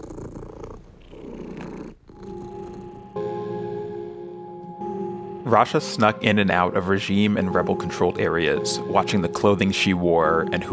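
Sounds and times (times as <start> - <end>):
cat purring while its fur is combed on a balcony: 0.0 - 4.3
speech: 5.5 - 10.7.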